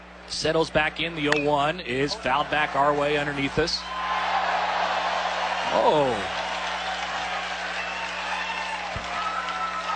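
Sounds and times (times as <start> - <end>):
speech: 0.3 - 4.0, 5.7 - 6.4
large stadium crowd clapping: 2.3 - 9.9.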